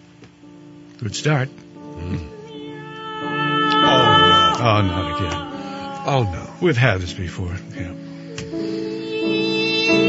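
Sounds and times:
speech: 1.0 - 2.4, 4.6 - 8.0
cat meows strung into a sung melody: 2.3 - 6.6, 8.8 - 10.0.

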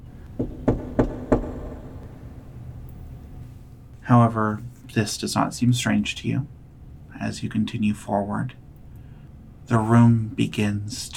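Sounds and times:
echoing reverberant knocking: 0.3 - 2.4
speech: 4.1 - 6.6, 7.2 - 8.6, 9.7 - 11.1.

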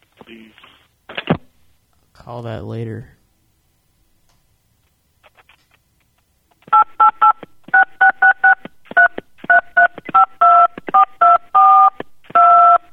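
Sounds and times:
speech: 0.3 - 0.7, 2.2 - 3.2
phone keypad tones tapped out as a Christmas melody: 6.7 - 12.9.

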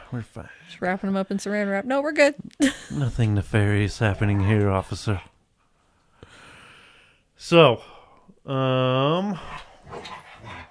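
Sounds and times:
speech: 0.1 - 5.3, 7.4 - 10.6
dog howling: 4.0 - 4.9.

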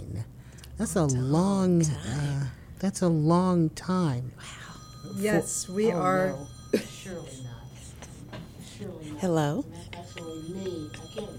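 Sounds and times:
speech: 0.8 - 7.6, 8.8 - 11.3
mobile phone ringing with a melodic ringtone: 4.4 - 11.3.

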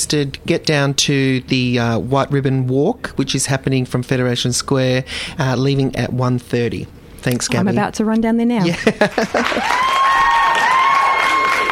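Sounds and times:
speech: 0.0 - 10.1
laughter: 8.6 - 9.9
crowd applause and cheering sound effect from a studio button: 9.0 - 11.7.

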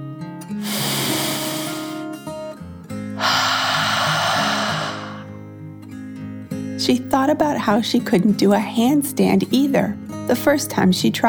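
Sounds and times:
deep breath in and out: 0.6 - 2.2, 3.2 - 5.4
speech: 6.9 - 11.2.

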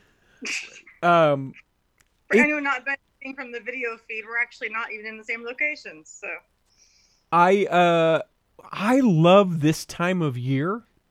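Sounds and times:
person sneezing: 0.4 - 1.0
speech: 0.4 - 1.6, 2.3 - 6.5, 7.3 - 10.9.

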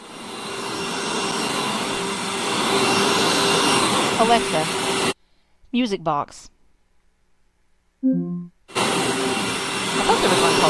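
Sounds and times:
vacuum cleaner sound played on a smart speaker: 0.0 - 5.2, 8.7 - 10.6
speech: 4.2 - 4.8, 5.7 - 6.6, 8.0 - 8.6.

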